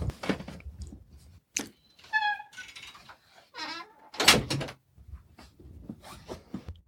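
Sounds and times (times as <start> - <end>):
door creaking on its hinges: 1.9 - 4.8.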